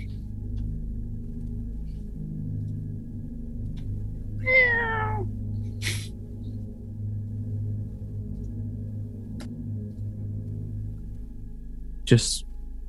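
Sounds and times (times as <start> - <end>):
low hum: 0.0 - 12.8
small cat meowing behind a trap door: 4.4 - 5.3
speech: 12.1 - 12.5.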